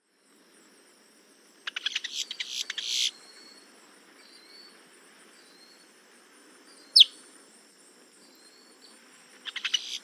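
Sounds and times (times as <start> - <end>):
Boat-tailed grackle Quiscalus major chattering: 1.7 - 3.1, 9.5 - 10.0.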